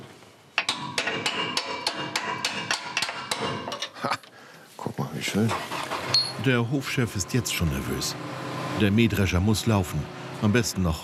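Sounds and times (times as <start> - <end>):
hammer striking a stuck metal bolt to loosen it: 0.6 - 3.9
speech: 5.3 - 5.7, 6.4 - 11.0.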